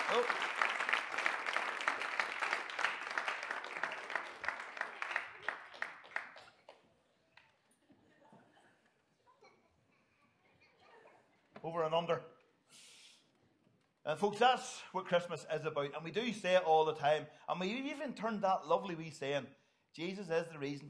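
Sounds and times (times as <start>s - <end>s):
crowd applauding: 0.0s - 6.9s
speech: 0.1s - 0.7s, 11.7s - 12.3s, 14.1s - 20.8s.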